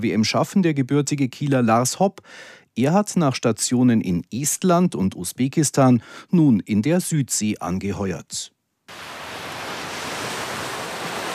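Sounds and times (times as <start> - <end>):
speech: 0.0 - 9.0
ocean surf washing onto a beach: 8.9 - 11.3.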